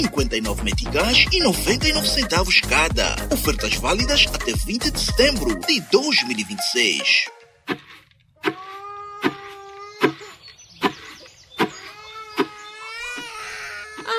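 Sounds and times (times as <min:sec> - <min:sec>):
speech: 0:00.0 - 0:07.8
infant crying: 0:08.5 - 0:10.2, 0:11.9 - 0:14.1.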